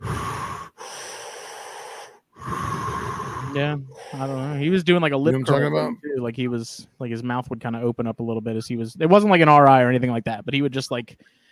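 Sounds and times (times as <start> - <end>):
person imitating snorkel breathing: 0.0 - 4.7
speech: 3.6 - 11.4.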